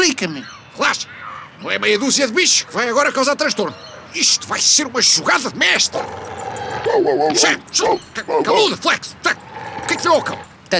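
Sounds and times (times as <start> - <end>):
speech: 0.0 - 10.7
dog growling: 5.4 - 10.6.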